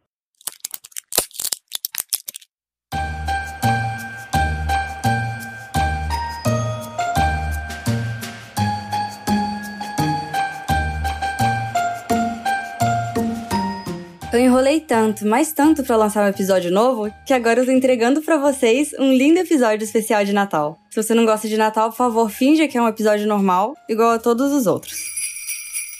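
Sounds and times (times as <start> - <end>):
antidepressant pill being pushed out of a blister pack: 0.4 - 2.5
blister pack foil crinkling: 0.4 - 2.5
steady rhythmic music track: 3.0 - 14.3
speech: 14.6 - 25.1.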